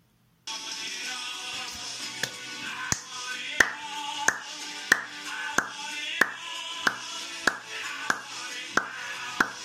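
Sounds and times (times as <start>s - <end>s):
song playing: 0.5s - 9.6s
hand claps to a rhythm: 2.2s - 9.6s.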